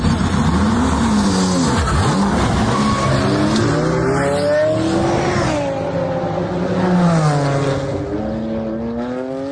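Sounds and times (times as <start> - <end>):
race car engine of a tech-adapted car for disabled drivers revving: 0.0 - 9.5.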